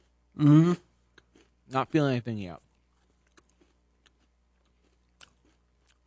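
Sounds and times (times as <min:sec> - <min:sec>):
speech: 0:00.4 - 0:00.8, 0:01.7 - 0:02.7
sandwich cookie being chewed: 0:01.0 - 0:01.9, 0:02.6 - 0:06.0.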